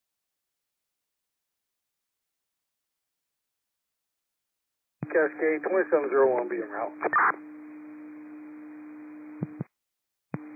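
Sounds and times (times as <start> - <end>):
radio dispatch cancellation tone for a water rescue call: 5.0 - 7.4
speech: 5.0 - 7.6.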